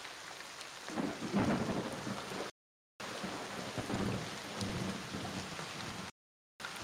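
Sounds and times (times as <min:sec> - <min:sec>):
steady rain hissing and pattering: 0:00.0 - 0:06.8
low distant thunder rumbling: 0:01.0 - 0:02.5, 0:03.2 - 0:06.1.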